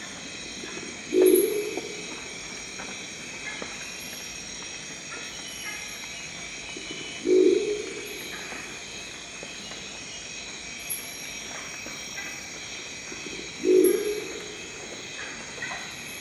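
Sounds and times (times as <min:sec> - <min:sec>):
steady insect-like hiss: 0:00.0 - 0:16.1
crested owl call with short low gruff notes: 0:01.1 - 0:02.2, 0:06.9 - 0:08.6, 0:13.6 - 0:14.7.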